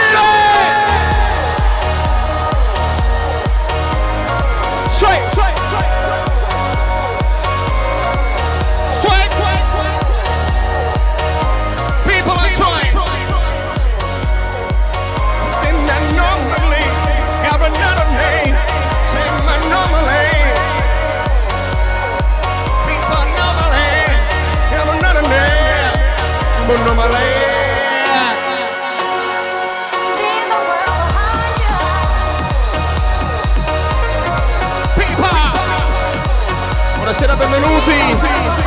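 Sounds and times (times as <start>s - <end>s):
large crowd cheering and shouting: 0.0s - 38.6s.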